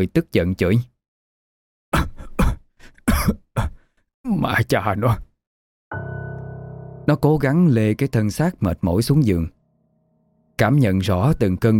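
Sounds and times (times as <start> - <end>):
speech: 0.0 - 0.9, 3.2 - 5.3, 7.1 - 9.6, 10.6 - 11.7
dry hacking coughs from an itchy irritated throat: 2.0 - 3.8.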